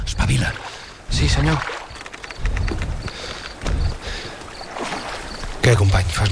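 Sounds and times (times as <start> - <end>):
oars splashing as soldiers row a boat toward land: 0.2 - 6.2
speech: 0.3 - 1.8, 5.7 - 6.2
rowing boat creaking and knocking: 1.2 - 6.2.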